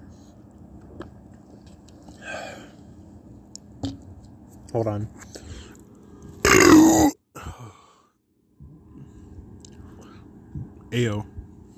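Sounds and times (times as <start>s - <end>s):
speech: 4.7s - 5.4s, 11.0s - 11.3s
loud burp: 6.4s - 7.2s.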